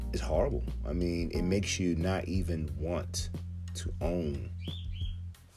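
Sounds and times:
speech: 0:00.1 - 0:04.8
pet cockatiel chirping: 0:04.6 - 0:05.2.

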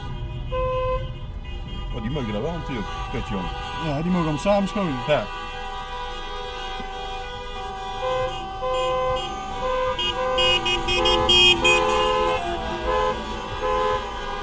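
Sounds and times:
car horns honking: 0:00.0 - 0:14.4
city traffic noise: 0:00.0 - 0:14.4
speech: 0:02.0 - 0:05.4.

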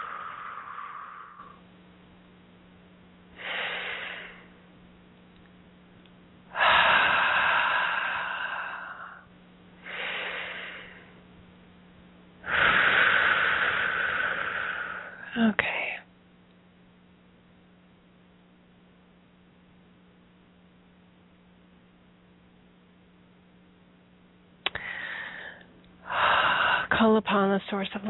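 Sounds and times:
deep breathing in through the nose and out through the mouth: 0:00.0 - 0:01.7, 0:03.4 - 0:04.5, 0:06.5 - 0:11.2, 0:12.4 - 0:15.3, 0:24.7 - 0:26.9
faint steady hum: 0:00.0 - 0:28.0
speech: 0:27.0 - 0:28.0.

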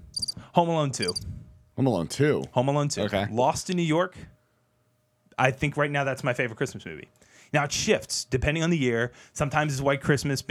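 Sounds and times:
crickets chirping: 0:00.0 - 0:00.4, 0:01.0 - 0:01.2
speech: 0:00.6 - 0:04.4, 0:05.4 - 0:10.5.

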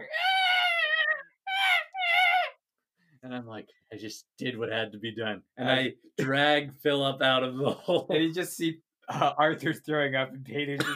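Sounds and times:
person imitating shrill shrieks of dying goblin children: 0:00.0 - 0:02.6
speech: 0:03.2 - 0:10.9.

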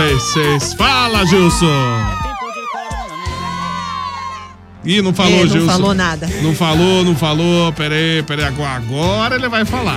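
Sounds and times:
crowd of fans screaming and cheering at a live show on a promenade: 0:00.0 - 0:05.5
speech: 0:00.2 - 0:02.2, 0:04.8 - 0:09.9.

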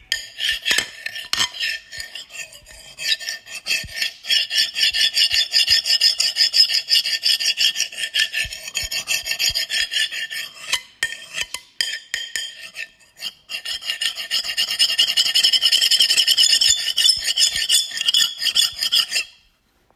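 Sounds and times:
knife scraping on a plate: 0:00.1 - 0:19.4.

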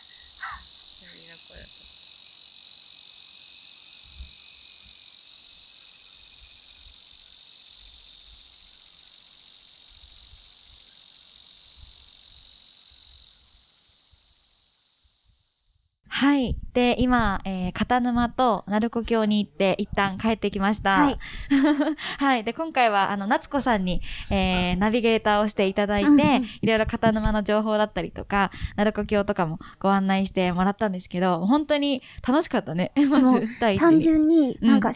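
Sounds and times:
cicadas buzzing outdoors: 0:00.0 - 0:16.0
speech: 0:16.4 - 0:34.9
laughter: 0:33.0 - 0:33.9.

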